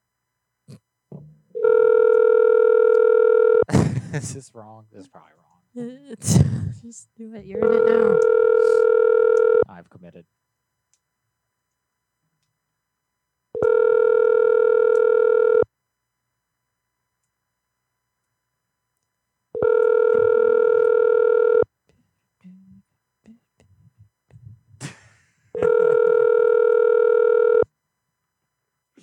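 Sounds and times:
telephone ringing tone on an internet calling service call: 1.6s - 3.6s, 7.6s - 9.7s, 13.6s - 15.7s, 19.6s - 21.7s, 25.6s - 27.7s
speech: 4.2s - 10.4s.

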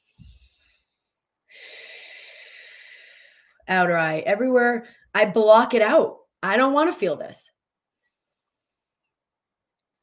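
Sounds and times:
short rough intake and long airy exhale: 0.0s - 3.6s
speech: 3.7s - 7.5s.

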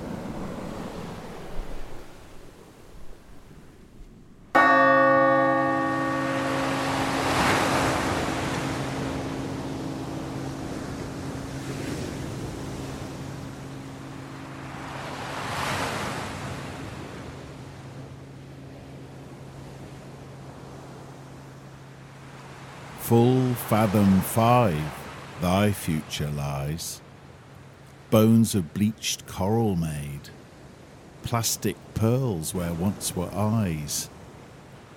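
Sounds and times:
ocean surf breaking on a shore: 0.0s - 34.9s
single deep bell striking: 4.5s - 15.2s
speech: 23.1s - 27.0s, 28.1s - 30.4s, 31.2s - 34.1s.

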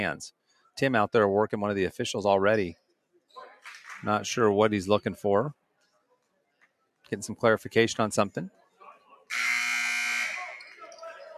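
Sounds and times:
speech: 0.0s - 2.8s, 4.0s - 5.6s, 7.1s - 8.6s, 9.3s - 9.6s
shot clock buzzer at a basketball game: 9.3s - 10.6s.

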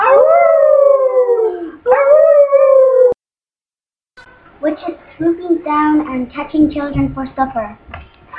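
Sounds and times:
children imitating wolves howling during a Halloween recitation: 0.0s - 3.2s
speech: 4.8s - 7.8s.

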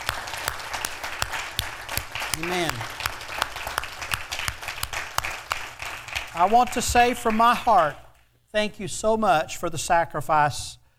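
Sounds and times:
crowd applauding honoring military veterans: 0.0s - 8.1s
speech: 2.4s - 3.0s, 6.4s - 10.8s.

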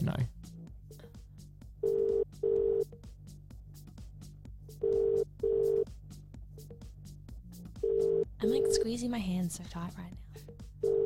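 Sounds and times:
phone call double-burst ringback tones: 1.8s - 2.8s, 4.8s - 5.9s, 7.8s - 8.7s, 10.8s - 11.0s
speech: 8.8s - 10.5s.

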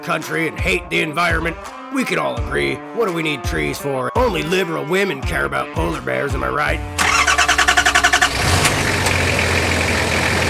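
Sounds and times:
speech: 0.0s - 7.0s
pickup truck engine revving: 7.0s - 10.4s
pickup truck engine starter cranking: 7.0s - 10.4s.

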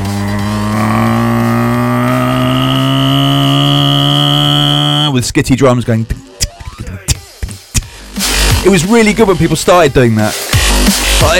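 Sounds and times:
loud buzzy single-note bass drone in a bass music tune: 0.0s - 6.1s
speech: 5.2s - 6.2s, 8.6s - 11.3s.

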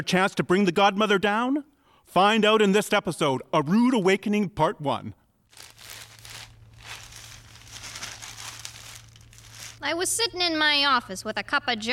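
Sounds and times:
speech: 0.0s - 6.0s, 9.8s - 11.9s
newspaper pages rustling and crinkling while handled and folded in an office: 5.5s - 9.8s.

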